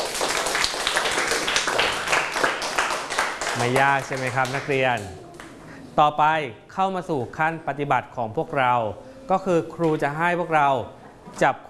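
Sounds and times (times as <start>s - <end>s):
group of people clapping: 0.0s - 5.6s
speech: 3.6s - 5.2s, 6.0s - 11.6s.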